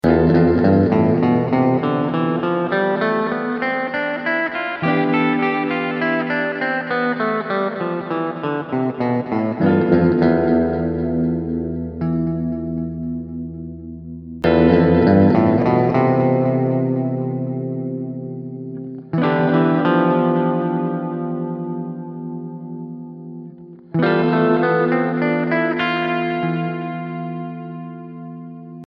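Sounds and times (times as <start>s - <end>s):
melody in the Greek Phrygian mode on E: 0.0s - 28.8s.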